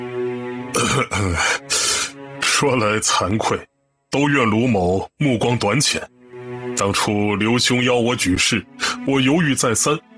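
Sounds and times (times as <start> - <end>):
dry coughing with throat clearing: 0.7 - 2.1
speech: 0.8 - 1.8, 2.6 - 6.2, 6.8 - 10.1.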